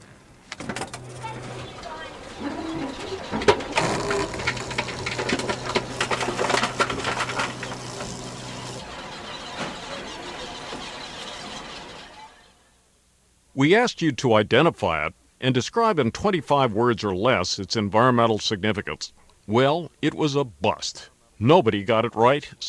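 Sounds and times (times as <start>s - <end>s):
supermarket reverse vending machine crushing returnable bottles and cans: 0.6s - 9.8s
quieter mechanical rattling: 0.6s - 9.9s
speech: 13.6s - 22.6s.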